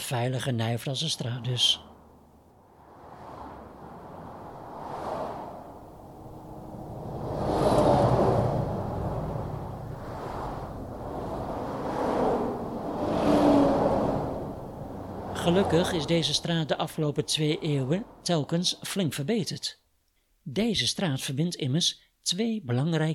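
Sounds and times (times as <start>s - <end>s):
speech: 0.1s - 1.9s, 15.7s - 19.8s, 20.4s - 23.1s
steady traffic rumble: 0.9s - 19.4s
cars rushing past on a busy road: 1.7s - 18.5s.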